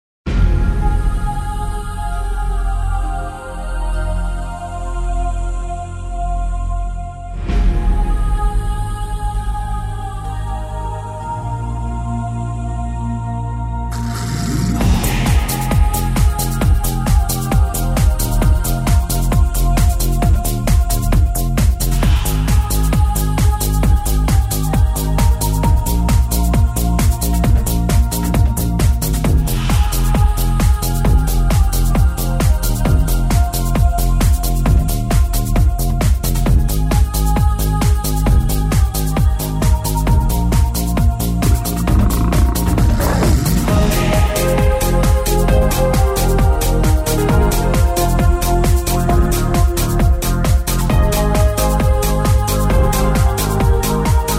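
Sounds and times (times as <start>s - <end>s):
music: 0.2s - 54.3s.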